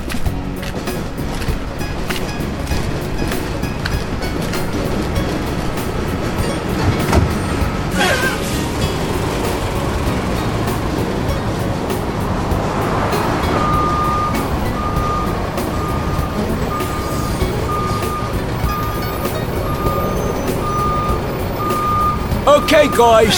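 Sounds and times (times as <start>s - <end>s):
cement delivery truck engine idling: 0.0s - 23.3s
cement truck backup alarm beeping while reversing: 19.8s - 23.3s
speech: 22.7s - 23.3s.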